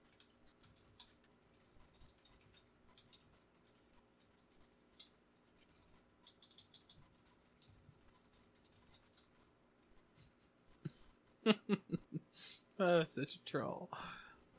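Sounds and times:
typing on a computer keyboard: 0:00.0 - 0:09.5
speech: 0:11.5 - 0:12.0, 0:12.8 - 0:14.5.

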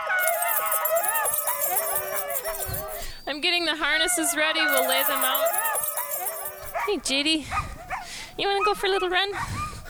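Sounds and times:
sled dogs yipping: 0:00.2 - 0:03.3, 0:04.7 - 0:07.0
speech: 0:03.4 - 0:05.7, 0:06.8 - 0:07.7, 0:08.4 - 0:09.6.

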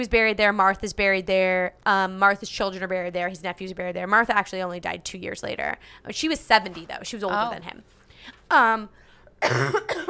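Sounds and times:
speech: 0:00.0 - 0:10.0
person with a sore throat coughing: 0:09.4 - 0:10.0.

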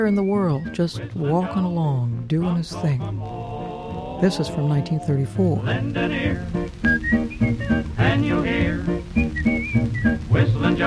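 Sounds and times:
whistled melody from a 1934 recording: 0:00.0 - 0:01.9, 0:06.6 - 0:10.8
speech: 0:00.0 - 0:03.6, 0:04.2 - 0:07.2
full instrumental accompaniment: 0:03.2 - 0:10.8.

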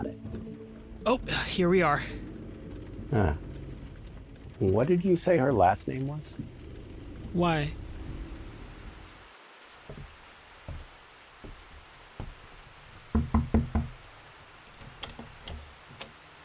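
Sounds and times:
rain falling outside: 0:00.2 - 0:16.4
speech: 0:01.0 - 0:02.2, 0:03.1 - 0:03.5, 0:04.6 - 0:06.6, 0:07.3 - 0:07.8
knocking on a door: 0:09.9 - 0:14.0.

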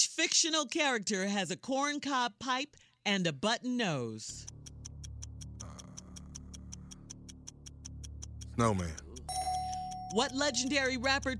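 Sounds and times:
speech: 0:00.0 - 0:04.6, 0:08.6 - 0:09.0, 0:10.1 - 0:11.3
quiz countdown clock ticking: 0:04.3 - 0:11.3.

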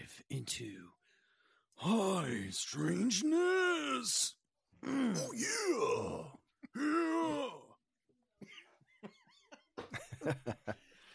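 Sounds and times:
speech: 0:00.0 - 0:01.0, 0:01.8 - 0:07.6, 0:10.2 - 0:10.8
gravelly exaggerated growling voice imitating a wrestler: 0:01.8 - 0:07.8
laughter: 0:08.5 - 0:10.9.

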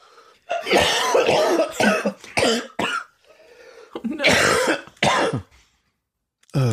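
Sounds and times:
person coughing hard in a coughing fit: 0:00.5 - 0:03.1, 0:04.0 - 0:05.5.

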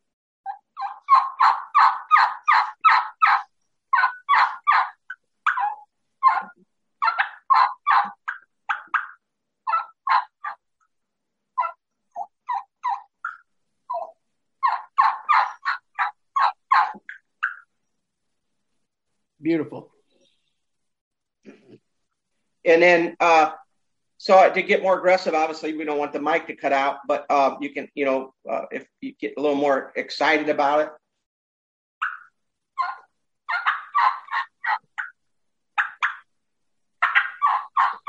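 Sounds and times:
plain turkey hen yelp made on a game call: 0:00.5 - 0:10.6, 0:11.6 - 0:17.8, 0:32.0 - 0:35.2, 0:35.8 - 0:36.3, 0:37.0 - 0:38.0
speech: 0:19.4 - 0:19.9, 0:22.7 - 0:23.6, 0:24.2 - 0:31.0.

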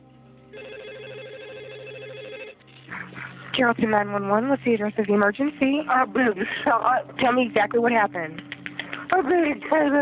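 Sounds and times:
faint hum: 0:00.0 - 0:10.0
telephone ringing over the line as a 911 emergency call connects: 0:00.5 - 0:02.8
speech: 0:03.0 - 0:08.5, 0:09.2 - 0:10.0.

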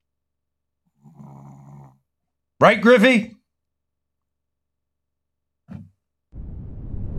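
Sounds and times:
snoring: 0:00.9 - 0:02.0
speech: 0:02.6 - 0:03.4.

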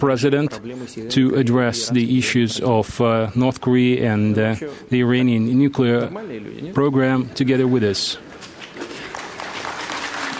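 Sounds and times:
speech: 0:00.0 - 0:08.3
journalists at a press conference clapping: 0:07.6 - 0:10.3.

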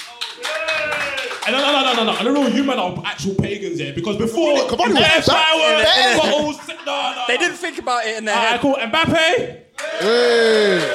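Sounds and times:
hand clapping: 0:00.0 - 0:02.6
speech: 0:01.5 - 0:10.9
laughter: 0:04.8 - 0:07.8.

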